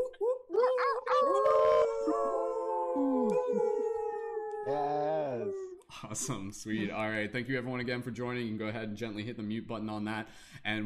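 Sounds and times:
yips and whoops: 0:00.0 - 0:05.8
people howling like wolves through microphones: 0:01.0 - 0:05.8
speech: 0:06.1 - 0:10.8.

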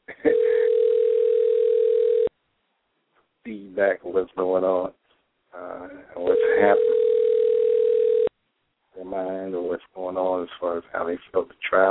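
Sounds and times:
telephone dial tone: 0:00.3 - 0:02.3, 0:06.4 - 0:08.3
speech: 0:03.8 - 0:07.0, 0:09.0 - 0:11.8.

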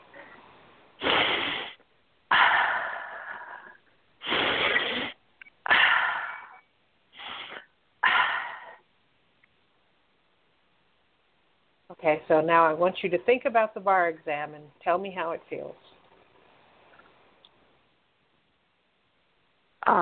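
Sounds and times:
person taking slow deep breaths: 0:01.0 - 0:06.6
speech: 0:12.1 - 0:16.0.

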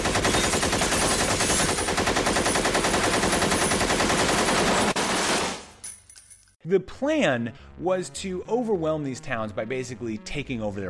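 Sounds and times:
Jeep-mounted machine gun firing: 0:00.0 - 0:05.7
speech: 0:06.7 - 0:10.8.

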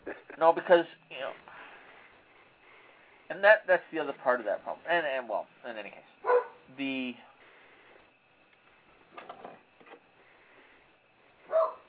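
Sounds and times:
speech: 0:00.4 - 0:01.3, 0:03.3 - 0:07.3
dog barking: 0:06.2 - 0:06.7, 0:11.5 - 0:11.8.

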